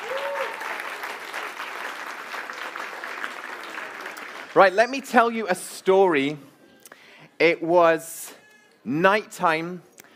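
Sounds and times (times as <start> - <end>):
audience applause: 0.0 - 4.9
speech: 4.6 - 6.5, 7.4 - 9.9.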